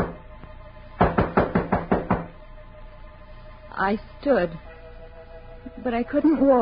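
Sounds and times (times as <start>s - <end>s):
low hum: 0.0s - 6.5s
firm knocks on a wooden door: 1.0s - 2.3s
speech: 3.8s - 4.7s, 5.8s - 6.5s.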